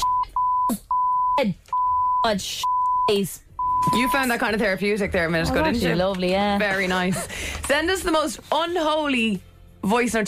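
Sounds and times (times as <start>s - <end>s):
high censor bleeps over swearing: 0.0s - 4.4s
speech: 0.7s - 10.2s.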